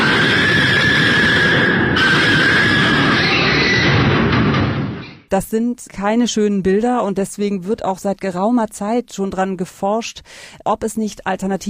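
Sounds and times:
several pigs squealing shrilly in distress: 0.0s - 4.1s
speech: 5.3s - 11.6s.

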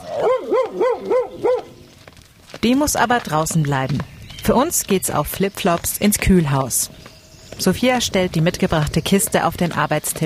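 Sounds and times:
dog barking excitedly: 0.0s - 1.8s
speech: 2.6s - 10.2s.

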